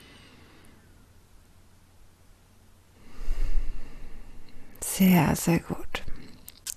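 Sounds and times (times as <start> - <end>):
deep breathing during a guided relaxation exercise: 0.0 - 0.9, 2.9 - 4.8
speech: 5.0 - 6.0.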